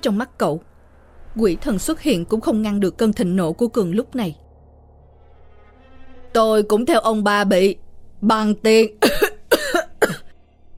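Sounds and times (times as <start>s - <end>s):
speech: 0.0s - 0.7s, 1.4s - 4.4s, 6.3s - 9.3s
man with tuberculosis coughing: 9.0s - 10.3s.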